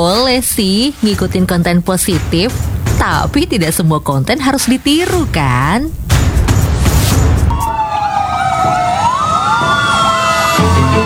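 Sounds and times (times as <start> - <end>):
speech: 0.0 - 6.1
heavy rumble and noise of road traffic: 0.0 - 11.0
emergency vehicle siren wailing: 7.5 - 11.0.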